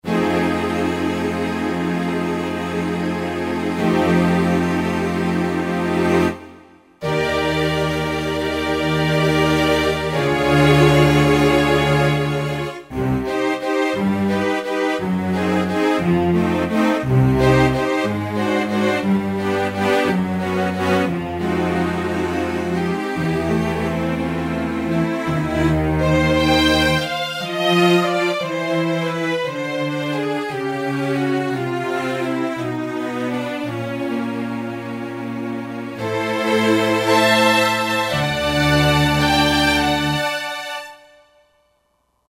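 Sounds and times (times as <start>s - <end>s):
Roland JD-990 soaring strings synthesizer patch: 0.0s - 41.2s.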